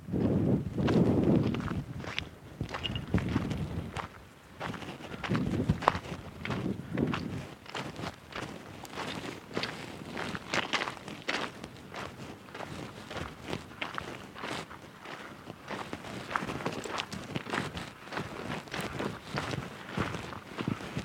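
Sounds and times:
faint wind: 0.0s - 21.0s
footsteps crunching on hard sand and coarse salt at 61 degrees Celsius: 0.8s - 21.0s.

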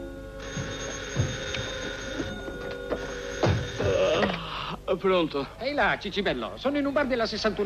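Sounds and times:
telephone bell ringing with a metallic trill: 0.0s - 4.2s
faint hum: 0.0s - 7.6s
speech: 4.9s - 7.6s.

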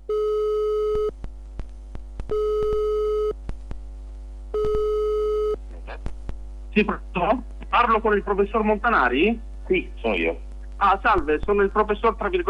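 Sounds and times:
telephone line tone of long electronic beeps: 0.1s - 1.1s, 2.3s - 3.4s, 4.6s - 5.6s
speech: 6.8s - 12.4s.

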